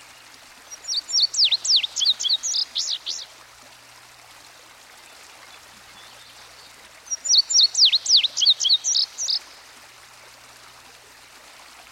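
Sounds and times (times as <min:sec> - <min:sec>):
stream faint steady rushing hiss: 0:00.0 - 0:11.9
indigo bunting song: 0:00.7 - 0:03.3, 0:05.5 - 0:09.6.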